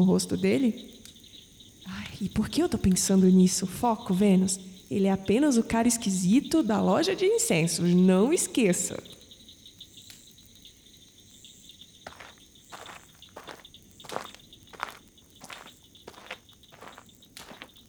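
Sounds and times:
speech: 0:00.0 - 0:01.1, 0:01.8 - 0:09.2
crickets chirping: 0:00.0 - 0:17.8
footsteps crunching: 0:12.0 - 0:17.8.

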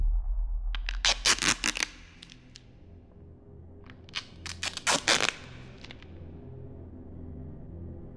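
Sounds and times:
duct tape being pulled and torn: 0:00.8 - 0:02.6, 0:04.1 - 0:06.0.

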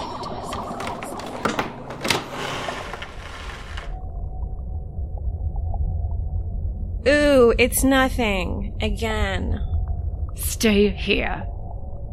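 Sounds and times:
door creaking and groaning open with clicks and scrapes: 0:00.4 - 0:04.0
low steady rumble: 0:03.0 - 0:12.1
speech: 0:07.6 - 0:09.7, 0:10.6 - 0:11.5.

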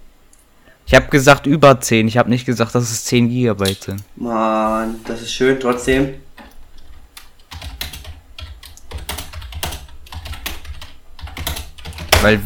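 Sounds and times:
low hum: 0:00.0 - 0:12.4
speech: 0:00.9 - 0:06.2, 0:12.2 - 0:12.4
rapid clicking of keys on a computer keyboard: 0:05.6 - 0:12.4.

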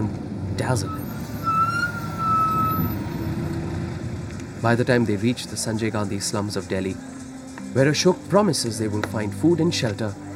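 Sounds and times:
dense street traffic rumbling in Delhi India: 0:00.0 - 0:10.3
speech: 0:00.6 - 0:01.1, 0:04.6 - 0:07.1, 0:07.7 - 0:10.2
siren: 0:00.8 - 0:03.5.

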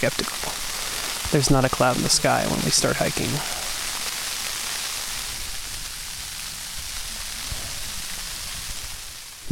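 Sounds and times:
speech: 0:00.0 - 0:00.6, 0:01.3 - 0:03.6
snow pelting thin tent walls: 0:00.0 - 0:09.4.

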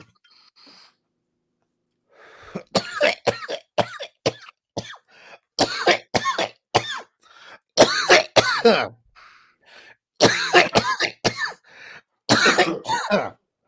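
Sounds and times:
person gasping: 0:02.1 - 0:02.7, 0:09.2 - 0:10.0, 0:11.6 - 0:12.2
harsh hacking coughs while smoking a water bong: 0:02.5 - 0:07.2, 0:07.8 - 0:09.0, 0:10.2 - 0:11.6, 0:12.3 - 0:13.4.

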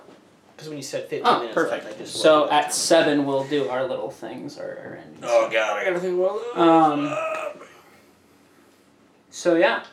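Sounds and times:
speech: 0:00.6 - 0:07.4, 0:09.4 - 0:09.9
person burping: 0:06.3 - 0:07.9.

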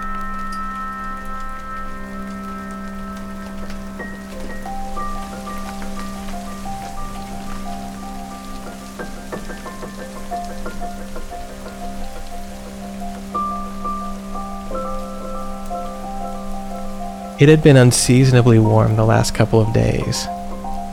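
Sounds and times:
heavy raindrops falling on a hard surface: 0:00.0 - 0:20.9
speech: 0:17.4 - 0:20.4.

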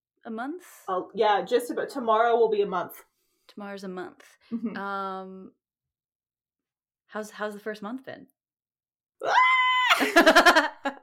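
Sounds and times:
speech: 0:00.2 - 0:05.6, 0:07.1 - 0:08.3, 0:09.2 - 0:11.0
high-pitched human scream: 0:09.2 - 0:10.2
laughter: 0:09.9 - 0:11.0.

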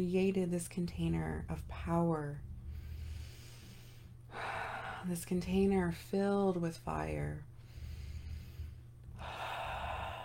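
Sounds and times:
speech: 0:00.0 - 0:02.5, 0:05.0 - 0:07.5
low constant hum: 0:00.0 - 0:10.2
deep inhale by a seated person during a breathing exercise: 0:02.6 - 0:05.1, 0:07.6 - 0:10.2.

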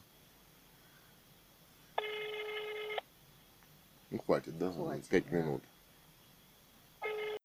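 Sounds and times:
telephone ringback tone: 0:02.0 - 0:03.0, 0:07.0 - 0:07.4
speech: 0:04.1 - 0:05.7.

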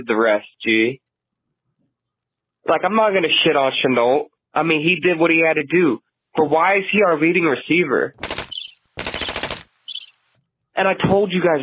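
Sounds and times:
speech: 0:00.0 - 0:01.0, 0:02.6 - 0:08.3, 0:10.8 - 0:11.6
rapid rattling burst of gunfire sound effect: 0:08.2 - 0:10.0
thin high-pitched chirping: 0:08.2 - 0:10.4.

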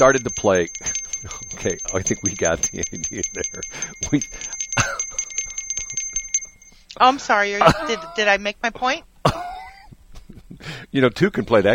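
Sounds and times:
speech: 0:00.0 - 0:04.9, 0:07.0 - 0:09.4, 0:10.9 - 0:11.7
hand bell ringing rapidly: 0:00.0 - 0:06.8.

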